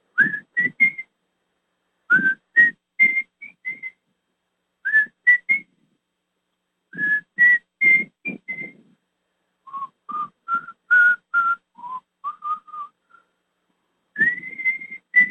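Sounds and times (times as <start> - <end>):
person whistling a slow simple melody from a song: 0.2 - 1.1, 2.1 - 4.0, 4.9 - 5.7, 7.0 - 8.9, 9.7 - 13.2, 14.2 - 15.2.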